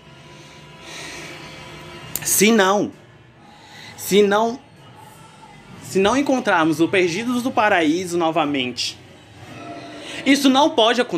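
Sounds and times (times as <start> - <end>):
heavy breathing: 0.2 - 1.8, 3.3 - 4.0, 9.4 - 10.5
speech: 2.2 - 3.0, 4.1 - 4.6, 5.9 - 9.0, 10.2 - 11.1.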